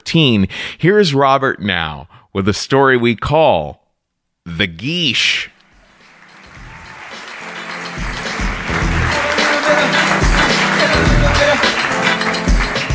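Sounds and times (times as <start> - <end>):
speech: 0.1 - 3.8, 4.4 - 5.5
crowd applauding: 5.7 - 12.9
cheers: 5.8 - 12.9.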